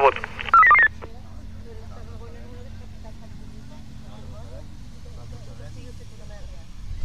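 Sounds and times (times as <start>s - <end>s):
compressed voice chatter over Red Cross radio equipment: 0.0s - 0.8s
two-way radio beeps: 0.0s - 1.0s.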